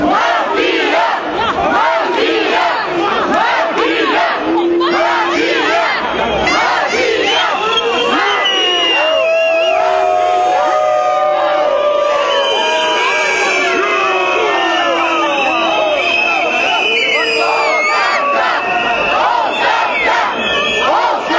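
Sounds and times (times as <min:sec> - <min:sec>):
large protest crowd chanting slogans in unison: 0:00.0 - 0:09.2, 0:13.6 - 0:21.3
protesters shouting and cheering: 0:00.0 - 0:21.3.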